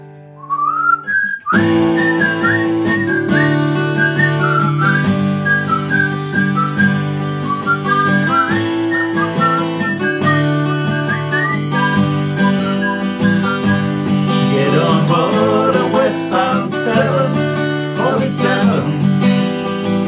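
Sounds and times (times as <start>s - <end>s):
full instrumental backing music: 0.0s - 20.0s
person whistling a flowing melody: 0.4s - 17.4s.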